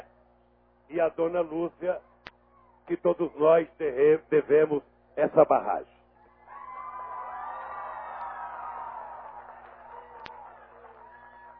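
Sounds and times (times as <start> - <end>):
speech: 0.9 - 2.1, 2.9 - 5.9
loud dense crowd cheering and roaring: 6.3 - 11.5.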